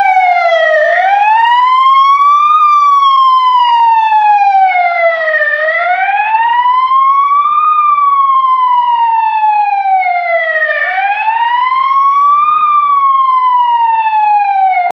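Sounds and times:
police car alarm: 0.0 - 14.9.

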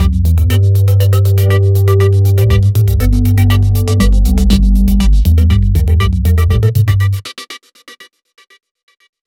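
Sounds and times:
electro pop bass drop: 0.0 - 7.2.

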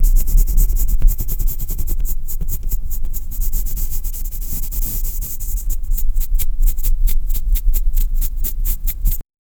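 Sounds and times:
scratching noise: 0.0 - 9.2.

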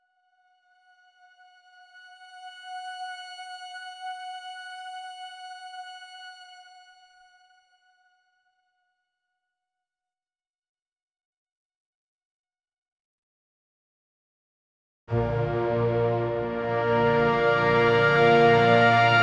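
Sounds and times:
powerful cinematic trumpet: 15.1 - 19.2.

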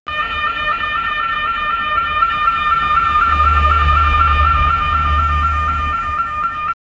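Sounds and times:
soft ambulance siren: 0.1 - 6.7.

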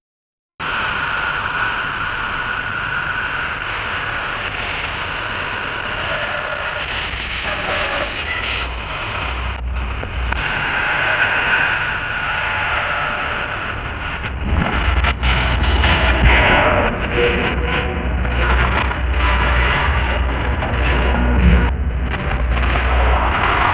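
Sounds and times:
ambient noise: 0.7 - 23.7
distorted voices: 3.3 - 23.7.

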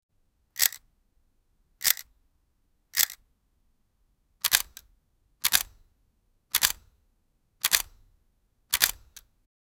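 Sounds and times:
cinematic camera sounds: 0.6 - 0.8, 3.0 - 3.2, 4.4 - 5.8, 6.5 - 6.8, 7.6 - 8.0, 8.7 - 9.2.

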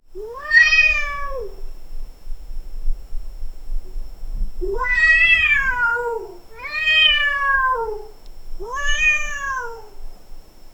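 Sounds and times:
cat meowing: 0.2 - 1.6, 4.7 - 10.0.

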